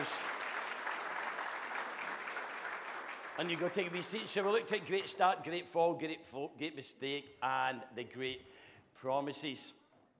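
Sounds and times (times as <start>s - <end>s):
audience applause for a group of girls at a children's church gathering: 0.0s - 5.3s
speech: 3.4s - 9.8s.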